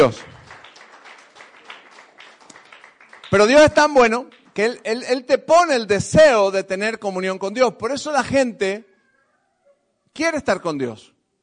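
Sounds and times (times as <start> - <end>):
speech: 0.0 - 0.3, 3.3 - 8.9, 10.2 - 11.1
congregation applauding during a church service: 0.0 - 5.3.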